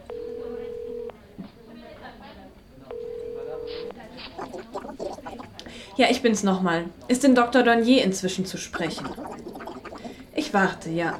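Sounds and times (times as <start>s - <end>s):
telephone ringback tones while placing a call from an office: 0.0s - 1.1s, 2.9s - 3.9s
faint murmuring voices: 3.3s - 6.1s, 8.7s - 11.1s
speech: 6.0s - 9.3s, 10.5s - 11.1s.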